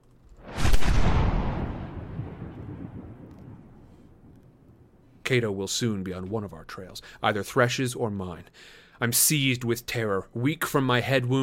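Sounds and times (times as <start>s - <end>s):
deep cannon boom: 0.4s - 5.0s
speech: 5.3s - 11.4s.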